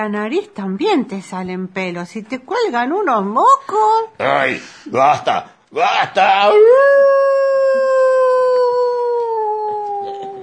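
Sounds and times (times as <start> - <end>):
speech: 0.0 - 7.0
wolf howling: 6.4 - 10.4.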